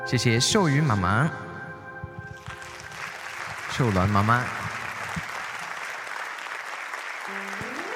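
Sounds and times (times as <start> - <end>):
speech: 0.0 - 1.5, 3.8 - 4.7
audience applause: 2.4 - 7.9.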